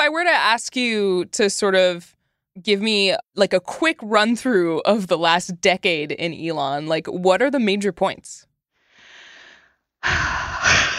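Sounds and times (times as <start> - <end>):
speech: 0.0 - 8.5, 10.0 - 10.9
deep breath: 8.8 - 10.9.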